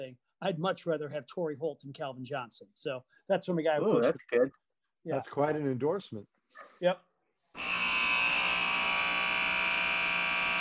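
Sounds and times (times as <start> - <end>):
speech: 0.0 - 7.8
electronic horn signalling segment change: 7.6 - 10.5.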